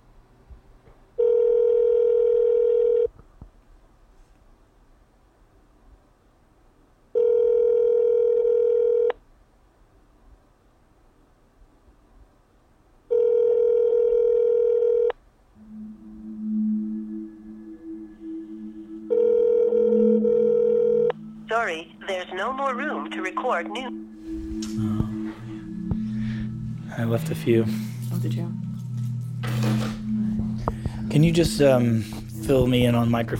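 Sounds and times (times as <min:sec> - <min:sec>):
outgoing telephone call ringback buzzing tones: 0:01.2 - 0:03.1, 0:07.2 - 0:09.1, 0:13.1 - 0:24.2
faint lower tone: 0:13.8 - 0:22.0, 0:22.6 - 0:33.3
speech: 0:21.7 - 0:24.1, 0:27.0 - 0:28.6, 0:31.2 - 0:33.3.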